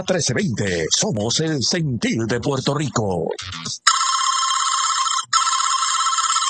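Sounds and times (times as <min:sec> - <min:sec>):
speech: 0:00.0 - 0:04.1
telephone ringing in long buzzy bursts: 0:03.9 - 0:06.4.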